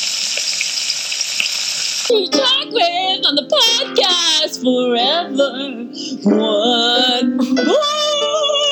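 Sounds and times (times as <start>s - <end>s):
food frying in hot oil: 0.0s - 2.2s
speech: 2.1s - 8.6s.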